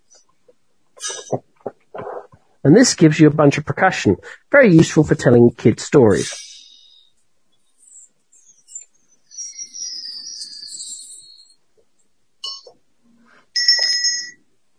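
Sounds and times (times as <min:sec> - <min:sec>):
speech: 0:02.6 - 0:06.5
shop doorbell ringing with bright high chiming tones: 0:13.6 - 0:14.4.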